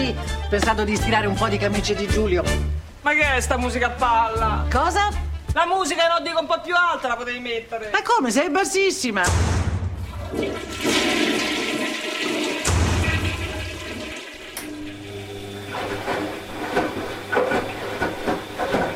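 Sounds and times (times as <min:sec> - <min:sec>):
speech: 0:00.0 - 0:09.6
toilet flushing in a neighbouring apartment: 0:10.0 - 0:18.9.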